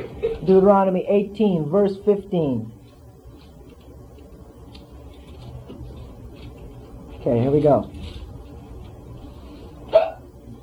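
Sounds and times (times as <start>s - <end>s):
quiet hum: 0.0s - 10.6s
speech: 0.4s - 2.8s, 7.2s - 8.2s
person sneezing: 9.9s - 10.3s.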